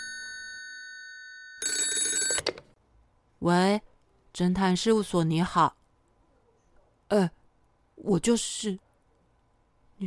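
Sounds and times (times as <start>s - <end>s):
telephone bell ringing: 0.0s - 2.7s
speech: 3.4s - 5.8s, 7.1s - 7.4s, 8.0s - 8.8s.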